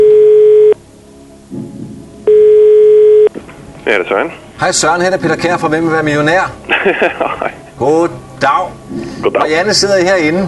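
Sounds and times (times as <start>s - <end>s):
telephone ringback tones of an outgoing call: 0.0s - 0.8s, 2.3s - 3.3s
speech: 3.9s - 10.4s
laughter: 6.6s - 7.7s.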